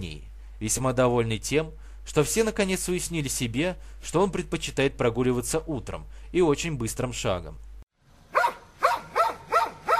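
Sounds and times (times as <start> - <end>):
speech: 0.0 - 7.7
dog barking with delight while jumping about: 8.3 - 9.9.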